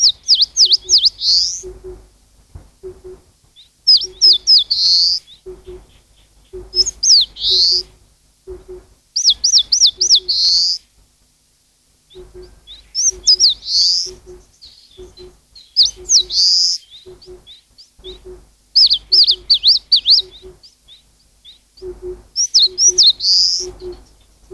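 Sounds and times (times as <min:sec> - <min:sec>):
eastern crowned warbler singing: 0:00.0 - 0:02.1, 0:02.8 - 0:10.9, 0:12.1 - 0:24.5
low paired hoots of another bird: 0:00.0 - 0:02.1, 0:02.8 - 0:10.9, 0:12.1 - 0:24.5.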